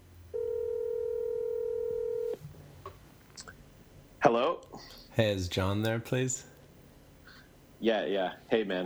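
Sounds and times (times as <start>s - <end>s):
steady electronic telephone tone: 0.3s - 2.4s
speech: 4.2s - 6.5s, 7.8s - 8.8s.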